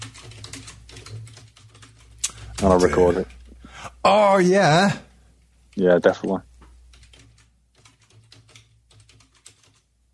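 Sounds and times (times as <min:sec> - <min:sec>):
typing on a computer keyboard: 0:00.0 - 0:03.5, 0:06.9 - 0:09.9
speech: 0:02.6 - 0:03.4, 0:04.0 - 0:05.1, 0:05.8 - 0:06.5.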